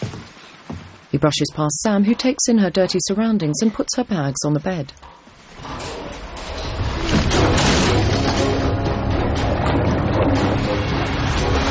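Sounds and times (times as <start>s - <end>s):
speech: 1.2s - 5.9s
boat engine turning over and starting on a wood-and-corrugated-iron boat: 5.3s - 11.6s.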